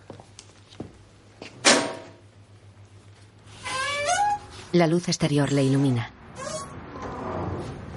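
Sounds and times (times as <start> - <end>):
door whirring and squealing as it slides open: 3.5 - 4.6, 6.3 - 7.9
speech: 4.7 - 6.2.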